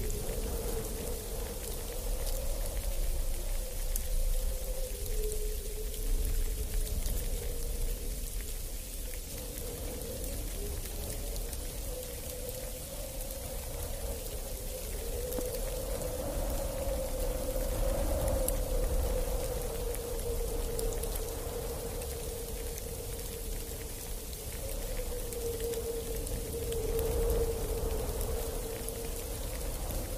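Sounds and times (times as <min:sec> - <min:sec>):
snowstorm wind howling across a mountainside: 0:00.0 - 0:30.1.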